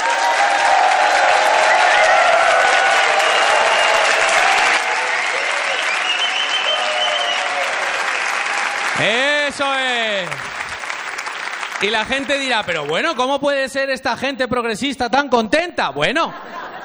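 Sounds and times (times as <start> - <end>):
live crowd cheering with scattered whoops at a comedians' panel show: 0.0 - 11.4
live crowd clapping at a comedians' panel show: 0.0 - 13.6
speech: 9.0 - 10.5, 11.8 - 16.6
laughter: 16.2 - 16.8.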